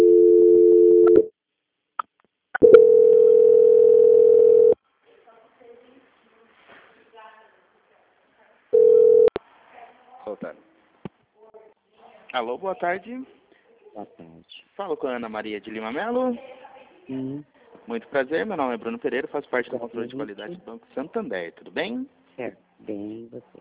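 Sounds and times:
telephone line tone during a call transfer to a bank's quality-control team: 0.0 - 1.3, 2.6 - 4.8, 8.8 - 9.3
speech: 12.4 - 13.4, 14.0 - 23.6.

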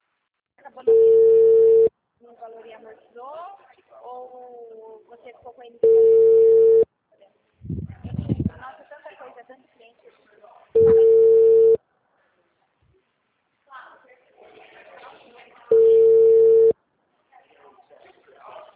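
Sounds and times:
telephone ringback tone while calling a client: 0.9 - 1.9, 5.8 - 6.8, 10.8 - 11.8, 15.7 - 16.7
speech: 5.2 - 6.7.

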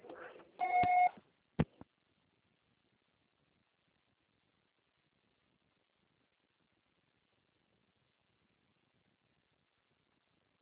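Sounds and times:
electronic telephone voicemail beep: 0.6 - 1.1.

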